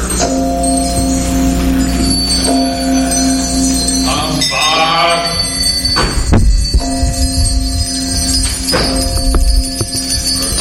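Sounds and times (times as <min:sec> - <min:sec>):
heavy old disused bell swinging and ringing: 0:00.0 - 0:10.5.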